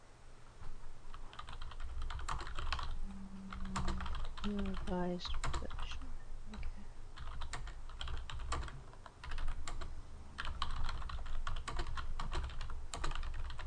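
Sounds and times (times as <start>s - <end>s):
typing a message on a computer keyboard: 1.1s - 3.0s, 3.6s - 6.0s, 7.2s - 13.6s
speech: 4.4s - 6.0s.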